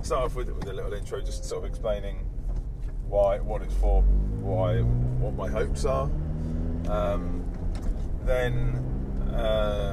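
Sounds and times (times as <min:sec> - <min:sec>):
car engine rumble heard from inside a moving car: 0:00.0 - 0:09.9
road drone inside a moving car: 0:00.0 - 0:09.9
speech: 0:00.1 - 0:02.3, 0:03.1 - 0:09.9.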